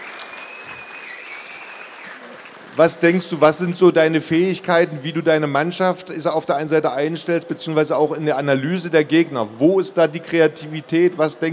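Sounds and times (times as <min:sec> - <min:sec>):
crowd clapping for a handball coach: 0:00.0 - 0:03.8
speech: 0:02.8 - 0:11.5.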